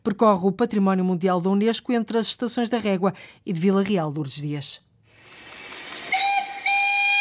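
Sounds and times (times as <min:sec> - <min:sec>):
speech: 0:00.0 - 0:04.9
historic Douro steam train whistle blasts on the riverside Douro line: 0:06.1 - 0:07.1.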